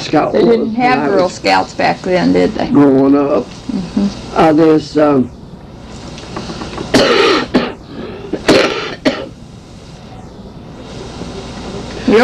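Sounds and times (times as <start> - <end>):
quiet hiss: 0.0 - 12.2
speech: 0.1 - 5.4
harsh coughing: 6.9 - 9.4.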